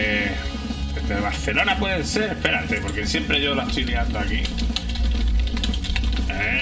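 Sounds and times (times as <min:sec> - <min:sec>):
speech: 0:01.1 - 0:04.8, 0:06.4 - 0:06.6
soft irregular keyboard clicks: 0:02.4 - 0:06.6.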